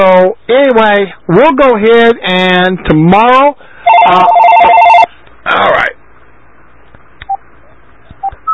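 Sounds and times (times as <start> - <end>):
speech: 0.0 - 4.4
phone giving short electronic beeps: 3.9 - 5.1.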